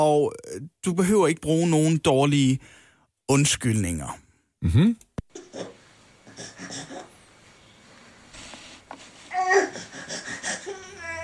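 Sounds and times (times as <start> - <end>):
speech: 0.0 - 5.0
baby fussing and crying: 9.3 - 11.2.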